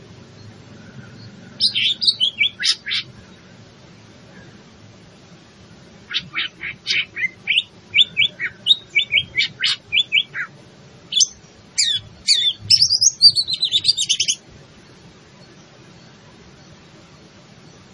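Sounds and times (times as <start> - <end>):
greater green leafbird in full song: 0.2 - 3.6, 6.1 - 16.8.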